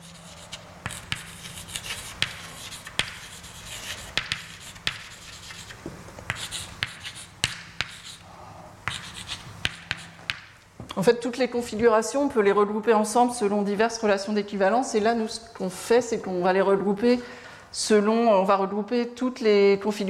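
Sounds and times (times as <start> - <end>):
taps and scratchy strokes of writing a formula: 0.2 - 8.2, 8.8 - 10.5
speech: 11.0 - 20.0.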